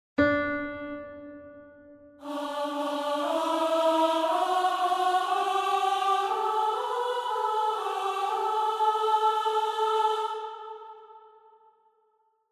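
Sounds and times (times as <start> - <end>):
person singing the second voice of a three-voice piece: 2.2 - 11.2.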